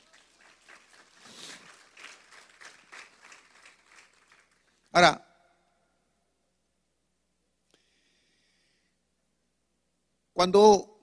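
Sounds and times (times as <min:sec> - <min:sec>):
audience applauding: 0:00.0 - 0:04.9
speech: 0:05.0 - 0:05.2, 0:10.4 - 0:11.0.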